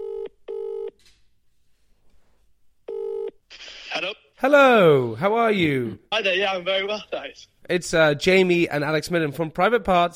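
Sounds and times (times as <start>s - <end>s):
telephone ringing tone heard down the line: 0.0s - 1.0s, 2.9s - 3.4s
speech: 4.0s - 10.1s.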